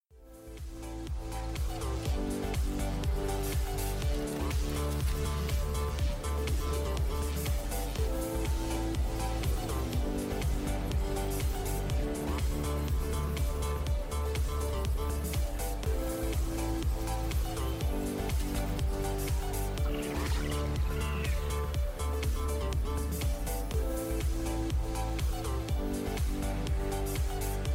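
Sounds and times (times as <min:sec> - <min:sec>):
background music: 0:00.1 - 0:27.7.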